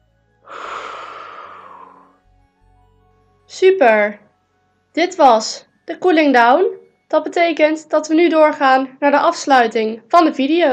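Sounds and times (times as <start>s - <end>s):
long exhale during an exercise session while rounding the back: 0.4s - 2.0s
speech: 3.5s - 4.2s, 5.0s - 10.7s.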